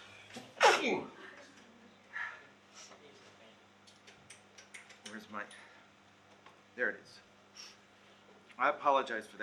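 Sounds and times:
person sneezing loudly: 0.6s - 1.1s
quick inhale: 7.6s - 7.8s
speech: 8.6s - 9.4s.

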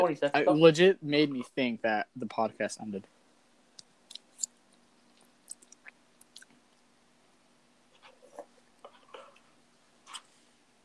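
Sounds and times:
speech: 0.0s - 3.2s
faint steady hum: 0.0s - 10.8s
wet chewing with sharp clicky bites: 4.1s - 6.6s.

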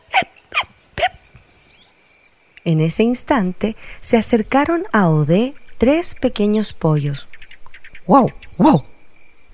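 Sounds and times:
voiced hiccups: 0.0s - 1.2s
speech: 2.6s - 7.3s, 8.1s - 8.9s.

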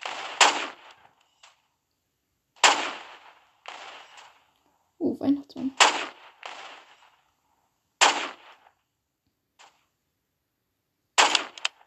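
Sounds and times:
video game gunfire: 0.0s - 1.0s, 2.6s - 4.3s, 5.7s - 7.0s, 8.0s - 8.6s, 11.2s - 11.8s
speech: 5.2s - 6.1s.

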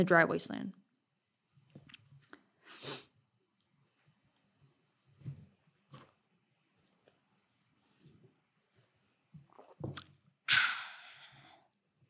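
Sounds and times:
speech: 0.0s - 0.8s
person sipping coffee: 9.5s - 10.2s.

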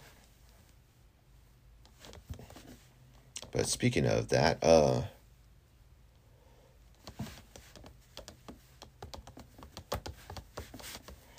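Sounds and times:
speech: 3.6s - 5.2s
computer keyboard typing: 7.0s - 11.3s.

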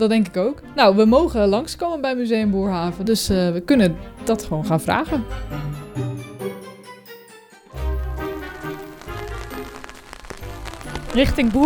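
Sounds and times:
speech: 0.0s - 5.8s, 11.2s - 11.6s
tonal music-like background: 0.0s - 11.6s
steady rain pattering on a hard surface: 7.8s - 11.6s.

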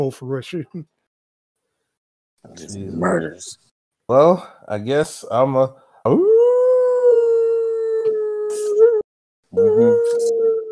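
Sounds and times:
speech: 0.0s - 1.0s, 2.4s - 6.3s, 9.5s - 10.5s
person howling like a wolf: 6.1s - 9.0s, 9.6s - 10.7s.

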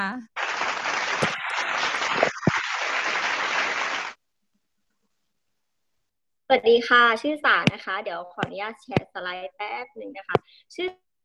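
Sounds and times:
speech: 0.0s - 0.3s, 6.5s - 11.0s
audience applause welcoming a speaker: 0.4s - 4.2s.

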